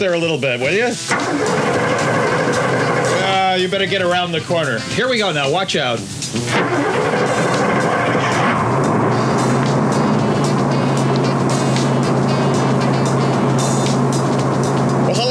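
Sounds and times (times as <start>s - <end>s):
speech: 0.0s - 1.9s, 3.6s - 7.2s
Chevrolet 454 V8 motorhome engine throaty rumble: 0.6s - 15.2s.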